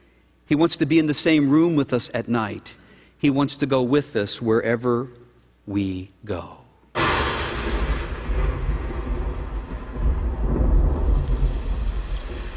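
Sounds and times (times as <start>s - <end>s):
speech: 0.5s - 6.6s
sudden loud thunder crack: 7.0s - 12.5s
steady hiss of heavy rain: 8.3s - 12.5s.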